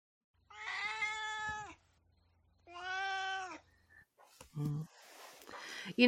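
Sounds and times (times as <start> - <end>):
cat meowing: 0.5 - 1.8, 2.6 - 3.7
speech: 5.8 - 6.0.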